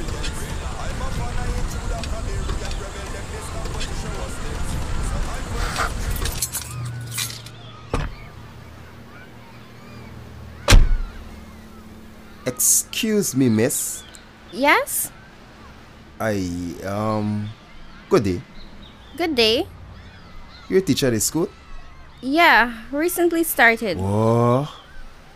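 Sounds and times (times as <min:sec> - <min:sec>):
car engine and road rumble: 0:00.0 - 0:23.0
car door thunk: 0:07.9 - 0:08.3, 0:10.6 - 0:11.2
speech: 0:13.0 - 0:14.0, 0:14.6 - 0:15.1, 0:16.2 - 0:18.5, 0:19.2 - 0:19.8, 0:20.7 - 0:21.6, 0:22.2 - 0:24.8.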